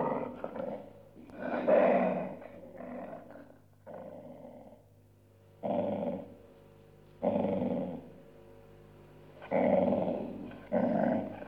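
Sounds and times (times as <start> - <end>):
dog growling: 0.0 - 4.8, 5.6 - 6.4, 7.2 - 8.1, 9.4 - 11.4.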